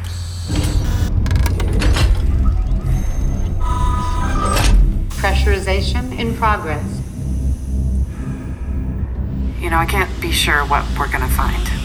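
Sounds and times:
heavy north airlock door clunking and ratcheting as it unlocks: 0:00.5 - 0:05.8
low steady hum: 0:00.8 - 0:11.8
speech: 0:05.6 - 0:07.0, 0:09.6 - 0:11.7.

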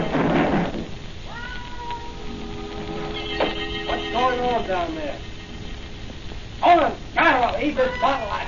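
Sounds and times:
noisy rustle: 0:00.0 - 0:08.4
cat yowling and meowing: 0:01.2 - 0:04.6
speech: 0:04.6 - 0:05.2, 0:07.6 - 0:08.4.

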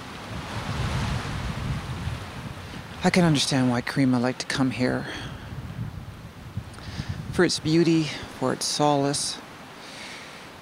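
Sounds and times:
wind rushing at a lake shore: 0:00.0 - 0:03.6, 0:05.0 - 0:08.3
lake waves washing against the shore: 0:00.0 - 0:10.5
speech: 0:03.0 - 0:05.3, 0:07.4 - 0:09.4.

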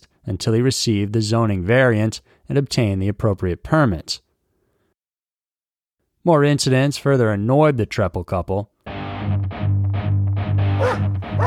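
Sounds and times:
speech: 0:00.2 - 0:04.2, 0:06.2 - 0:09.8
dogs barking and yipping: 0:10.8 - 0:11.4.

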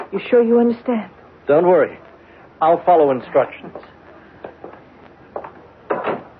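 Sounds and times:
speech: 0:00.1 - 0:02.0, 0:02.6 - 0:03.9
door clunking shut: 0:05.9 - 0:06.3
door latch knocks and rattles: 0:05.9 - 0:06.3.

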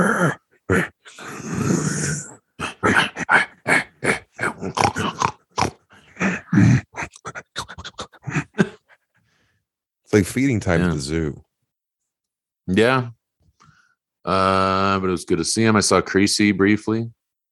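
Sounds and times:
grunting snorts and growly squeals: 0:00.0 - 0:08.9
speech: 0:10.2 - 0:11.5, 0:12.7 - 0:13.2, 0:14.2 - 0:17.2.

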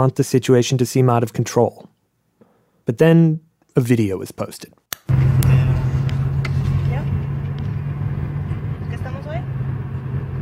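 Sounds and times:
speech: 0:00.0 - 0:01.9, 0:02.9 - 0:05.3
car engine drone inside a car driving through a dry dusty landscape: 0:05.1 - 0:10.3.

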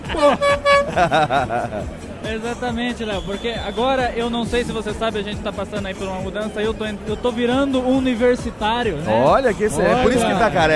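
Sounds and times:
horn honking: 0:00.0 - 0:01.3
busy noise: 0:00.0 - 0:10.7
people talking and laughing: 0:00.0 - 0:10.7
speech: 0:00.1 - 0:10.7.

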